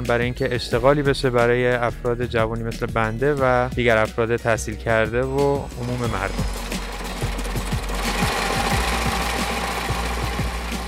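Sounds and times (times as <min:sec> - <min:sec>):
speech: 0:00.0 - 0:06.6
hose braiding machine running with rhythmic clatter: 0:05.7 - 0:10.8.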